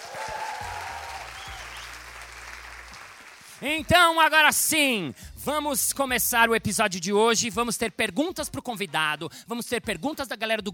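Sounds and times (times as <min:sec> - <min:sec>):
crowd applause: 0:00.0 - 0:03.9
speech: 0:03.6 - 0:10.7.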